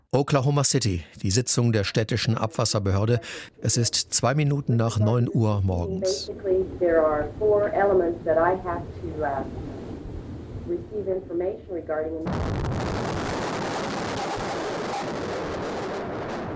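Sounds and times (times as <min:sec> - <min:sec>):
person speaking calmly: 0:00.0 - 0:06.4
speech: 0:00.1 - 0:09.7, 0:10.7 - 0:12.9
powerful bomb blast: 0:12.2 - 0:16.5
sustained loud roar and crackling rumble: 0:12.3 - 0:16.5.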